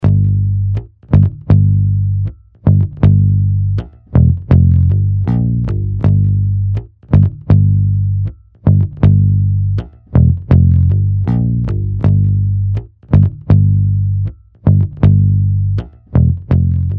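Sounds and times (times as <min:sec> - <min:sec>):
rock bass guitar: 0:00.0 - 0:16.9.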